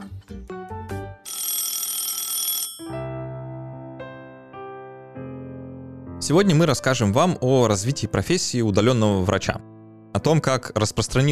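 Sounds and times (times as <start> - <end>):
telephone ringing with electronic beeping and bell-like trill: 1.2 - 3.0
speech: 6.3 - 11.2.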